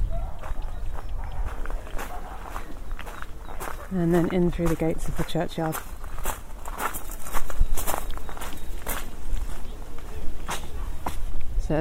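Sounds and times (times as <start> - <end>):
footsteps crunching across gravel toward a churchyard: 0.2 - 11.4
speech: 3.9 - 5.9.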